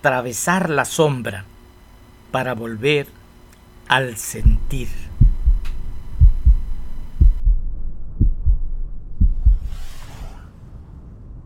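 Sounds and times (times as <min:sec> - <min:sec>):
speech: 0:00.0 - 0:01.6, 0:02.3 - 0:03.2, 0:03.9 - 0:05.1
deep heartbeat thumping in lub-dub pairs: 0:04.4 - 0:09.8
soft airy swish: 0:09.5 - 0:10.5.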